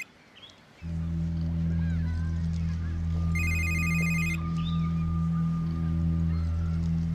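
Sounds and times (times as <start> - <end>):
loud steady low hum: 0.8 - 7.1
telephone ringing: 3.4 - 4.4.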